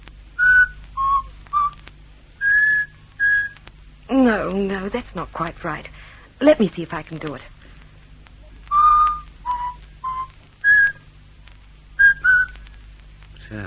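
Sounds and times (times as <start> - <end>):
faint low hum: 0.0 - 13.6
person whistling a short tune: 2.4 - 3.6, 8.7 - 11.0, 12.0 - 12.6
speech: 4.5 - 7.6, 13.5 - 13.6.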